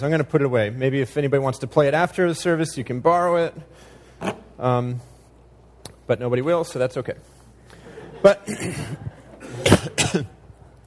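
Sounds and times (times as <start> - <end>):
speech: 0.0 - 5.1, 6.1 - 7.4, 8.2 - 10.4
person coughing: 8.4 - 10.4
throat clearing: 8.5 - 10.4.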